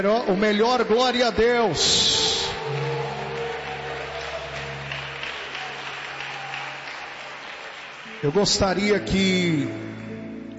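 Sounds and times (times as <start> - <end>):
speech: 0.0 - 2.1, 8.2 - 10.0
congregation applause at a church service: 0.0 - 10.2.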